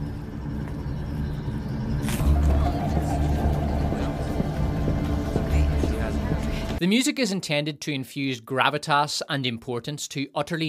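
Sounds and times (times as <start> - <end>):
car engine rumble driving down a street: 0.0 - 6.8
road noise: 0.0 - 6.8
speech: 6.8 - 10.6.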